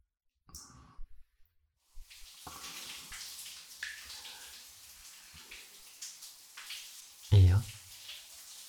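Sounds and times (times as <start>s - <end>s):
shower water running: 1.8s - 8.6s
person speaking loudly: 7.3s - 7.8s.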